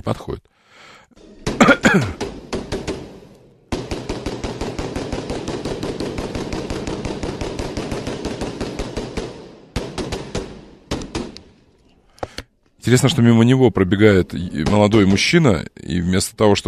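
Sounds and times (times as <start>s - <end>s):
speech: 0.0s - 1.2s, 1.9s - 2.3s, 12.9s - 16.6s
rapid bursts of gunshots from a gunman firing at people: 1.4s - 11.4s.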